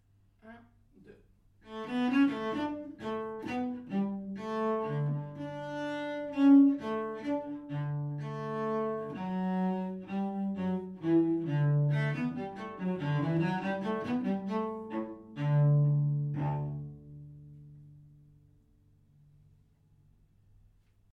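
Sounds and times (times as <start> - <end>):
solo cello: 1.6 - 18.4.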